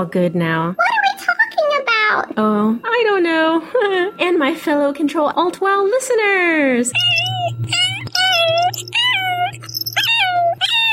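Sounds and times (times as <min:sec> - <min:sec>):
speech: 0:00.0 - 0:00.9, 0:02.1 - 0:07.8
kitten meowing with high-pitched drawn-out cries: 0:07.0 - 0:10.9.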